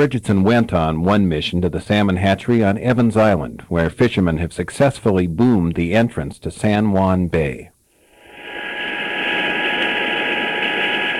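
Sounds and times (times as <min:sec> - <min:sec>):
speech: 0:00.0 - 0:07.7
Sikorsky Sky Crane cargo helicopter turbine engine roar: 0:08.0 - 0:11.1.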